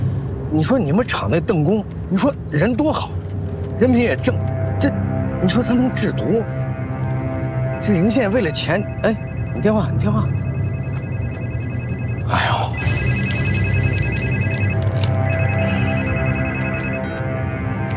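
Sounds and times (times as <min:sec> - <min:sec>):
speech: 0:00.5 - 0:03.2, 0:03.8 - 0:06.6, 0:07.8 - 0:10.4
steady hum: 0:02.0 - 0:17.9
mobile phone ringtone: 0:07.3 - 0:17.4.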